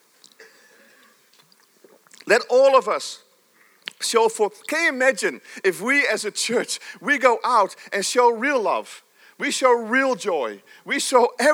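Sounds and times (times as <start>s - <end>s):
person sipping and swallowing a drink: 0.2s - 2.3s
speech: 2.3s - 3.2s, 4.0s - 11.5s.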